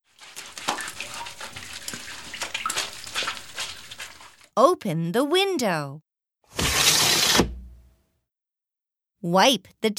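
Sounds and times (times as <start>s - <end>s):
wet mop sloshing water on a floor: 0.0s - 4.5s
speech: 4.6s - 6.1s, 9.2s - 9.9s.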